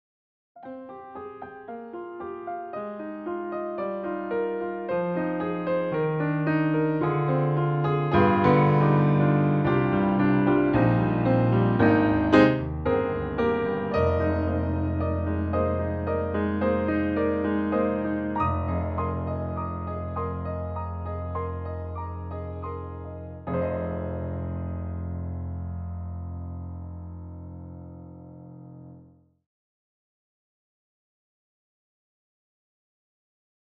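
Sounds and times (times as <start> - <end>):
bright Steinway piano: 0.6 - 29.2.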